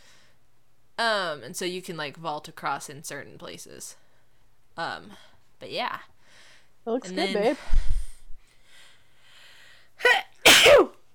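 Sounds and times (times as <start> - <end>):
faint hiss: 0.0 - 11.1
speech: 1.0 - 4.0, 4.8 - 6.1, 6.8 - 7.9
loud sneeze: 10.0 - 11.0.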